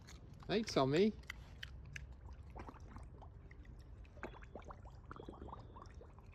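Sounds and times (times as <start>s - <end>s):
speech: 0.5s - 1.2s
animal blowing bubbles in water: 4.2s - 6.3s.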